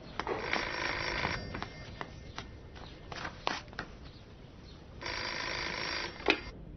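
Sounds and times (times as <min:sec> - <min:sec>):
telephone ringing in a house: 0:00.3 - 0:02.4, 0:05.0 - 0:06.6.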